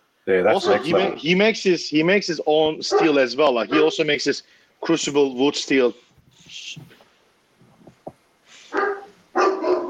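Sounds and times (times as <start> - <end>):
speech: 0.3 - 6.0, 6.7 - 7.0
dog barking: 0.6 - 1.2, 2.9 - 4.0, 8.7 - 9.8.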